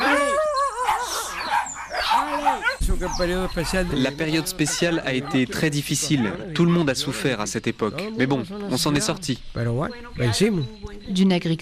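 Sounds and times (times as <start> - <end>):
farm dogs barking and yelping under a mango tree near Havana: 0.0 - 7.3
speech: 2.5 - 11.6.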